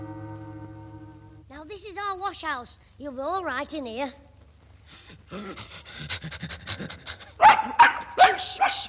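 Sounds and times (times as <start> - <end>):
speech: 1.8 - 4.2, 4.9 - 7.8, 8.4 - 8.8
dog panting: 5.4 - 7.8.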